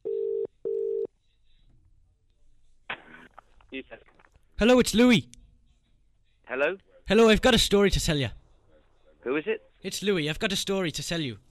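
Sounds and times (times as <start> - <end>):
telephone line electronic ringing tone: 0.0 - 1.1
speech: 3.8 - 5.4, 6.5 - 8.4, 9.3 - 11.4.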